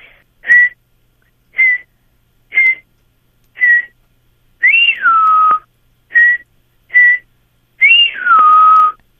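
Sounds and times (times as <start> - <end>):
person whistling an imitation of a gray jay call: 0.4 - 0.8, 1.6 - 1.9, 2.6 - 2.8, 3.6 - 4.0, 4.6 - 9.0.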